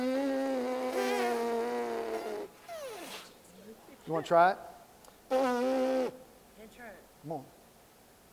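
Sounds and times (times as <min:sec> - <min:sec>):
woman lip buzzing in a lip-buzzing exercise: 0:00.0 - 0:02.6, 0:05.3 - 0:06.2
speech: 0:04.1 - 0:04.7, 0:05.3 - 0:06.2, 0:06.8 - 0:07.6.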